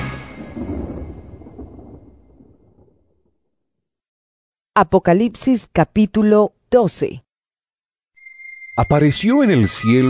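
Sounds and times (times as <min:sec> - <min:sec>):
deep rolling thunder rumble: 0:00.0 - 0:03.4
speech: 0:04.8 - 0:07.2, 0:08.8 - 0:10.0.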